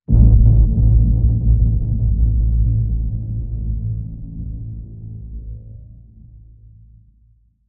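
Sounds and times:
tonal rumbling hit: 0.1 - 6.1.

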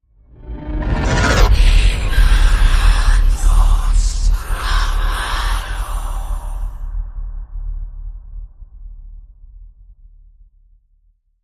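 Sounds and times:
eerie boom: 0.3 - 9.2.

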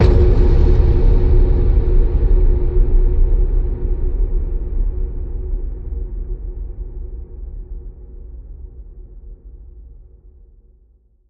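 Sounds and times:
space station boom: 0.0 - 7.0.

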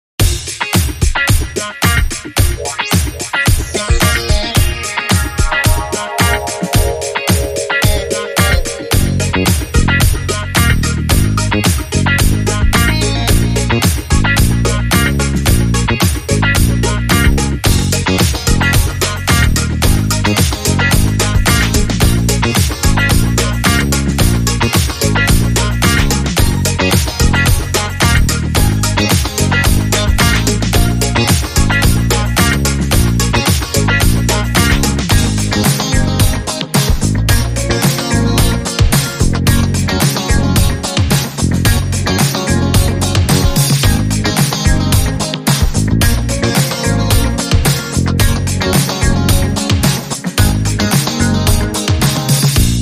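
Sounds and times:
flute rhythm: 0.2 - 52.7.

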